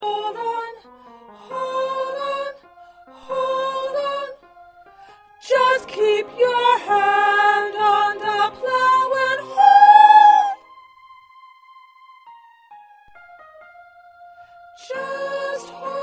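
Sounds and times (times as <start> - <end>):
low second soprano choir part singing: 0.0 - 4.4, 5.4 - 10.6, 14.8 - 16.0.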